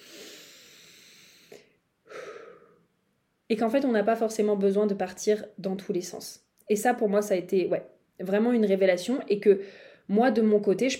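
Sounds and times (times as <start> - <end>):
long deep inhalation: 0.0 - 2.9, 9.6 - 10.1
strong breathy exhale: 0.0 - 2.9, 9.6 - 10.0
speech: 3.5 - 10.9.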